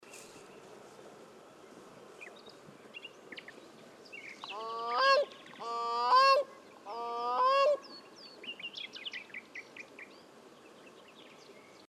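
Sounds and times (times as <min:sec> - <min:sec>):
Grey Crowned Crane Balearica regulorum call in Busatello Verona Italy: 0:04.4 - 0:07.9.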